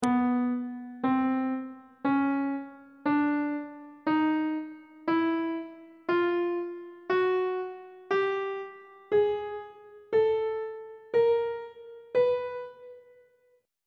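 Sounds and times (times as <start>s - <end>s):
C flat aeolian mode chromatic scale over 1 octave: 0.0s - 13.2s.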